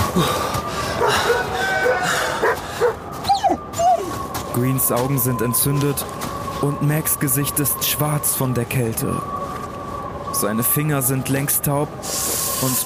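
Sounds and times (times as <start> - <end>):
speech: 0.1 - 0.5, 4.6 - 9.4, 10.4 - 12.8
dogs whining and whimpering: 0.1 - 4.3
dogs barking and yelping: 0.8 - 4.2.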